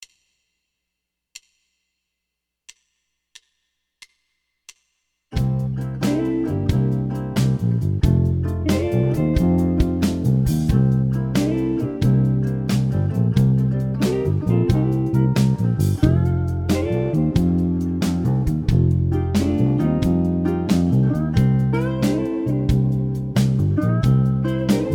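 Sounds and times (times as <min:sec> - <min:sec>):
slow blues music: 0:05.4 - 0:24.9.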